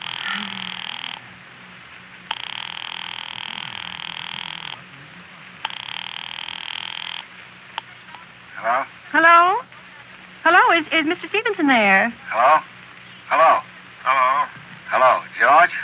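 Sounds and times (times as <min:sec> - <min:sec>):
telephone line ringing tone heard through a handset: 0:00.0 - 0:01.2, 0:02.3 - 0:04.8, 0:05.6 - 0:07.2
faint low hum: 0:00.0 - 0:15.8
speech: 0:10.8 - 0:12.7.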